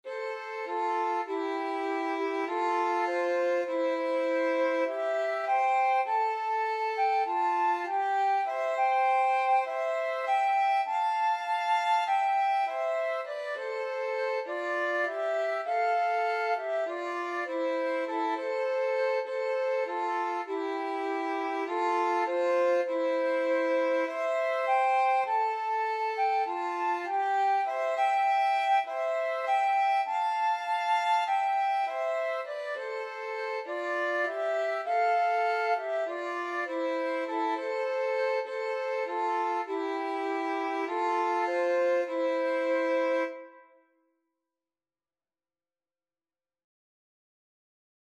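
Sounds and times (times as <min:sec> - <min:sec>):
violin in a flute and violin duet: 0:00.0 - 0:43.8
flute in a flute and violin duet: 0:00.0 - 0:43.9.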